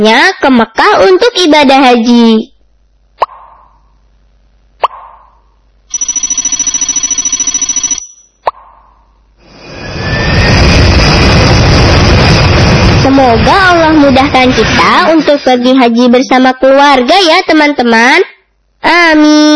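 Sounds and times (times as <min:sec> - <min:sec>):
speech: 0:00.0 - 0:02.5, 0:13.1 - 0:19.5
sharp pops: 0:03.2 - 0:03.8, 0:04.8 - 0:05.4
buzzing electronic ring: 0:05.2 - 0:09.4
airplane jet engine spooling up: 0:09.4 - 0:15.2.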